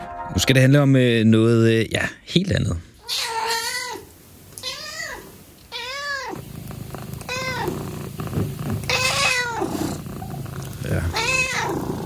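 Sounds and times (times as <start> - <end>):
speech: 0.5 - 3.3
cat meowing: 3.0 - 6.5, 7.2 - 7.9, 8.8 - 12.0
cat purring: 5.9 - 12.0.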